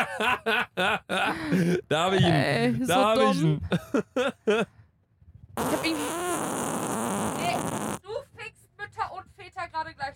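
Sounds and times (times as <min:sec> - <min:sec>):
laughter: 0:00.0 - 0:04.7
speech: 0:00.0 - 0:04.8
loud drawn-out raspy fart: 0:05.6 - 0:08.0.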